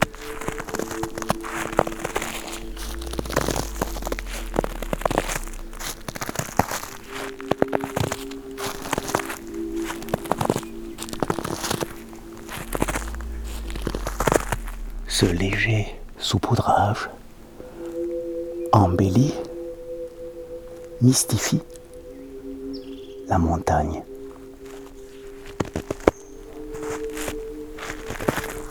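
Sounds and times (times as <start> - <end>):
footsteps crunching through dry dead leaves: 0.0 - 16.2, 24.3 - 28.6
speech: 15.2 - 17.2, 18.8 - 19.4, 21.0 - 21.8, 23.3 - 24.1.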